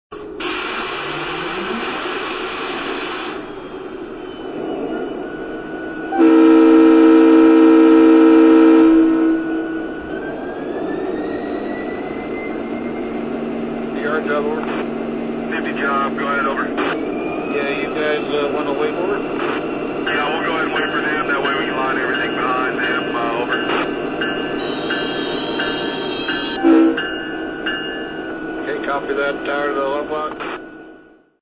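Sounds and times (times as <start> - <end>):
SD70MAC diesel locomotive: 0.1 - 31.4.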